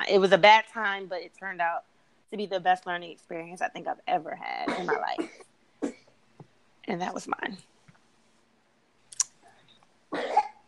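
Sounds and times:
speech: 0.1 - 6.0, 6.9 - 7.7
person coughing: 4.6 - 6.1, 10.2 - 10.6.

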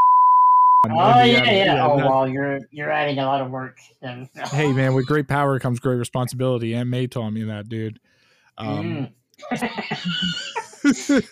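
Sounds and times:
high-pitched censor beep masking a spoken word: 0.0 - 0.9
speech: 0.8 - 11.2
laughter: 0.9 - 2.2, 4.4 - 5.2, 8.7 - 11.2.

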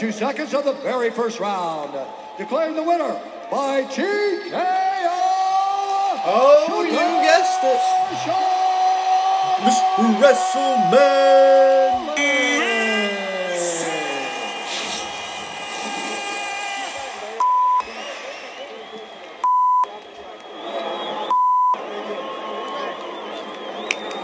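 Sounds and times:
speech: 0.0 - 5.1, 6.2 - 8.5, 9.6 - 12.5
crowd murmur and chatter at a fight event: 0.0 - 24.2
loud steady electronic beeps: 17.4 - 17.9, 19.4 - 20.0, 21.3 - 21.8.

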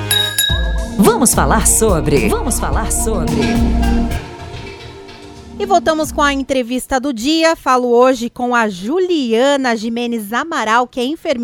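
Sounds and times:
glasses clinking in a toast: 0.0 - 0.8
speech: 1.0 - 4.2, 5.6 - 11.4.

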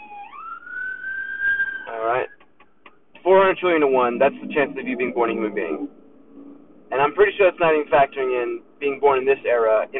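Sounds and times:
ambulance siren wailing: 0.0 - 2.5, 3.8 - 6.6
speech: 3.3 - 6.0, 6.9 - 9.9.

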